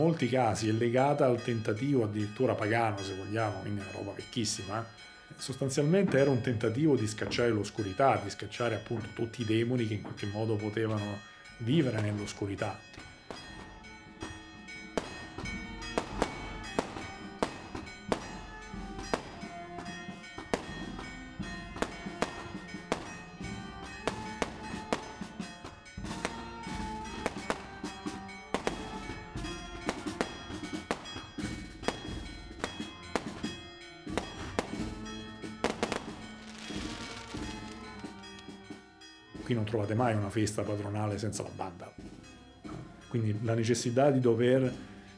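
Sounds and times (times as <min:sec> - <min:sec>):
speech: 0:00.0 - 0:13.0, 0:40.0 - 0:42.0, 0:43.1 - 0:44.9
continuous barrage of fireworks exploding: 0:14.7 - 0:38.8.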